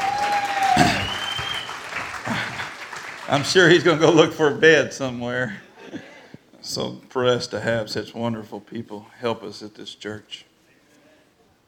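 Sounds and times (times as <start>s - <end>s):
congregation clapping in a large room: 0.0s - 4.4s
speech: 3.3s - 5.6s, 6.7s - 10.5s.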